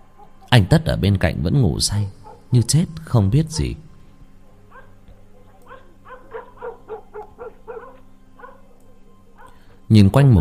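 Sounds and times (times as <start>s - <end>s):
neighbour's dog barking persistently in the distance: 0.0s - 0.5s, 2.2s - 2.6s, 4.4s - 9.8s
steady low hum: 0.0s - 10.3s
speech: 0.5s - 3.8s, 9.9s - 10.3s.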